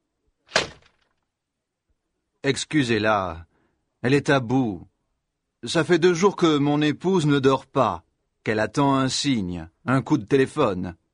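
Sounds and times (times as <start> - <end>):
heavy door slamming shut: 0.5 - 1.1
speech: 2.4 - 4.9, 5.6 - 11.0.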